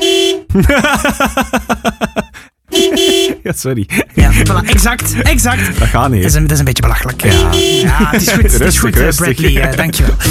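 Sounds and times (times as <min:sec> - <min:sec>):
thin weak small car horn honking: 0:00.0 - 0:00.5, 0:02.7 - 0:03.4, 0:07.3 - 0:08.0
speech: 0:00.5 - 0:02.2, 0:03.5 - 0:10.2
laughter: 0:00.5 - 0:06.0, 0:07.5 - 0:10.2.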